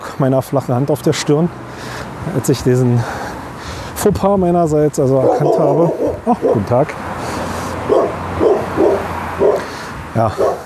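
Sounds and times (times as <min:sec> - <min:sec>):
speech: 0:00.2 - 0:03.2, 0:04.0 - 0:07.1, 0:10.2 - 0:10.5
dog barking: 0:05.2 - 0:06.8, 0:07.9 - 0:09.7, 0:10.3 - 0:10.6.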